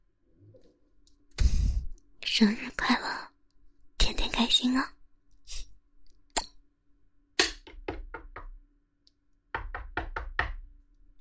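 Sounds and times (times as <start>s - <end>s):
speech: 2.3s - 3.3s, 4.4s - 5.0s
knocking on a door: 7.6s - 8.6s, 9.5s - 10.7s.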